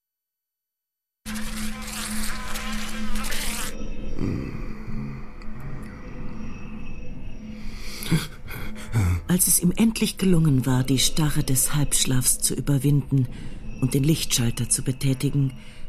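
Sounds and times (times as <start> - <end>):
white fly buzzing: 1.2 - 5.5
speech: 9.3 - 15.8.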